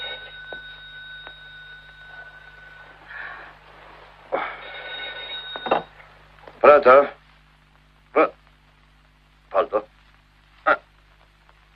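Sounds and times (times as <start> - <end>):
telephone bell ringing: 0.0 - 3.4, 4.4 - 6.0
speech: 6.7 - 7.2, 8.2 - 8.4.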